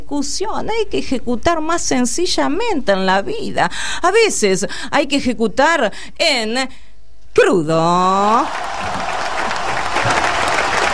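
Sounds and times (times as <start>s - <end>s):
speech: 0.1s - 8.9s
audience applauding: 8.3s - 10.9s.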